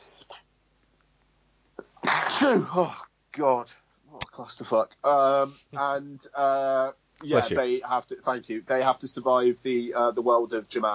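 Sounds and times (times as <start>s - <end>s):
sneeze: 1.8s - 3.0s
speech: 2.4s - 3.8s, 4.4s - 10.9s.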